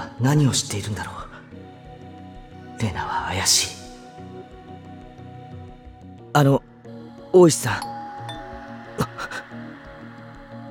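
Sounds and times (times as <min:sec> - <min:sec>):
speech: 0:00.2 - 0:01.3, 0:02.8 - 0:03.8, 0:06.4 - 0:06.7, 0:07.3 - 0:07.9
doorbell chime ding-dong: 0:07.8 - 0:09.5.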